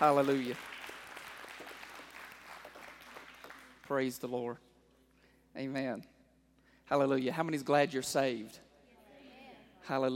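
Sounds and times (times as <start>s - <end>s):
speech: 0.0s - 0.8s, 3.9s - 4.6s, 5.6s - 6.1s, 6.9s - 8.6s, 9.8s - 10.1s
congregation clapping hands during a church service: 0.0s - 4.4s.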